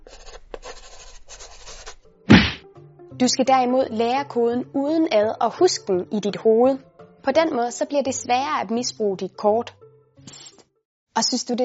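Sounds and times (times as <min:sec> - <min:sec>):
pencil scratching across paper: 0:00.0 - 0:02.6
dull thump of something being set down: 0:02.3 - 0:02.6
speech: 0:03.2 - 0:10.4, 0:11.2 - 0:11.6.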